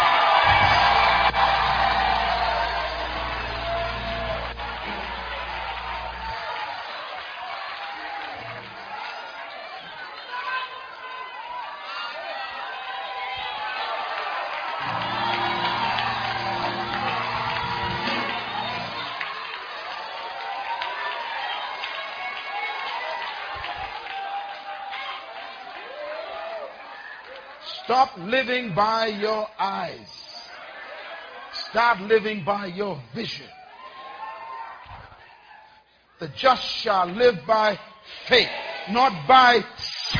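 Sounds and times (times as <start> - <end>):
church audience clapping: 0.0 - 11.6, 13.3 - 28.0
church audience shouting hallelujah: 0.0 - 27.8
low organ-like chords: 0.5 - 6.4, 14.8 - 19.2
speech: 27.9 - 30.2, 31.7 - 33.6, 36.2 - 40.1.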